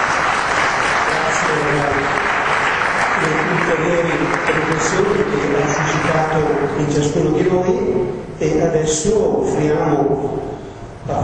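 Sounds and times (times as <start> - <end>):
sustained applause from a sizable audience for a speaker: 0.0 - 7.1
faint murmur of voices: 0.8 - 10.1
speech: 6.4 - 11.2.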